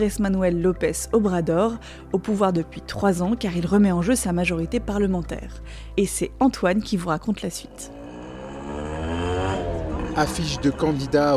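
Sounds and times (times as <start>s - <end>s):
speech: 0.0s - 8.0s, 10.2s - 11.3s
election campaign car engine humming driving along the street: 7.6s - 11.3s
traffic noise: 7.9s - 11.3s.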